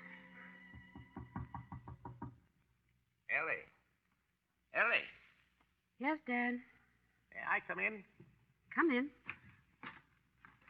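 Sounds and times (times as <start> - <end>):
knocking on a wooden bedroom door: 0.7 - 2.5
speech: 3.4 - 3.8, 4.8 - 5.2, 6.0 - 6.7, 7.5 - 8.2, 8.8 - 9.2.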